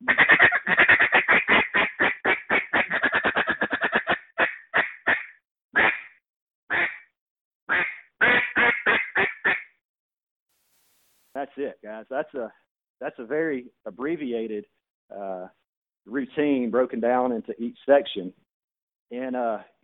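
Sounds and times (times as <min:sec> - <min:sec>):
feed chatter blown on a duck call to settle ducks: 0:00.0 - 0:06.1, 0:07.7 - 0:09.6
quick burst of quacks on a duck call: 0:00.0 - 0:07.1, 0:07.7 - 0:09.7
speech: 0:11.6 - 0:18.4, 0:19.1 - 0:19.8.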